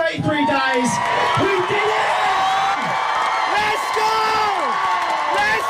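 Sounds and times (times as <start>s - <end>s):
crowd cheering at a marathon finish line: 0.1s - 5.6s
shouts and whoops of a crowd at a marathon finish line: 0.2s - 5.6s.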